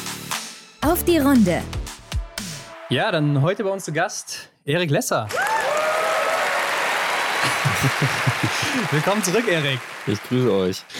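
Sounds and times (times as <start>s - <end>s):
speech: 0.8s - 1.8s, 2.9s - 5.5s, 7.8s - 10.9s
live audience applauding: 5.3s - 10.9s
laughter: 7.2s - 10.9s.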